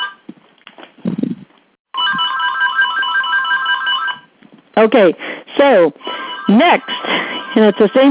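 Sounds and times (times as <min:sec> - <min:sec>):
incoming-call ringtone on a phone: 0:00.0 - 0:00.2, 0:01.9 - 0:04.3, 0:06.0 - 0:08.0
speech: 0:04.8 - 0:07.0, 0:07.6 - 0:08.0.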